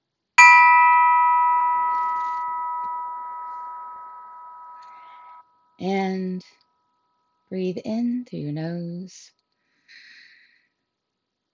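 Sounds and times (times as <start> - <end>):
bell struck for breathing meditation: 0.4 - 5.4
speech: 5.8 - 6.6, 7.5 - 10.1.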